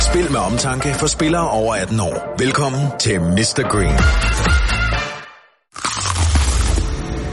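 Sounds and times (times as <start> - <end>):
speech: 0.2 - 4.6
crunchy bite into a fried chicken burger: 5.7 - 7.2.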